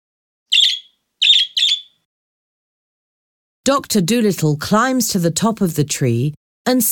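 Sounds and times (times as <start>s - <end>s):
bird crying from a tree: 0.5s - 2.0s
speech: 3.7s - 6.9s.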